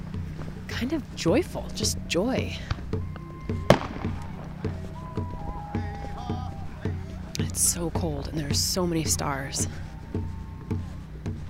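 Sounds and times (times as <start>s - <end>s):
speech: 0.8s - 3.6s, 7.6s - 9.9s
faint voices cheering: 1.9s - 11.4s
fireworks popping outdoors on a cold night at a protest camp: 3.6s - 4.6s.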